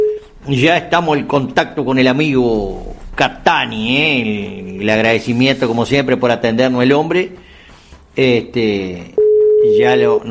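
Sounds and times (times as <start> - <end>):
telephone line tone while a call is placed: 0.0 - 0.3, 9.2 - 10.0
speech: 0.4 - 7.4, 8.2 - 10.3.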